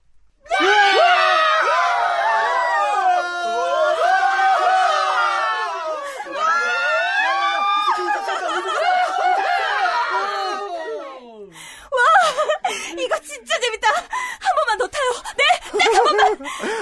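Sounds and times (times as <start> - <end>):
crowd screaming on swinging pirate ship ride at amusement park: 0.5 - 11.2
laughter: 5.8 - 10.7, 11.9 - 13.4, 14.0 - 16.8.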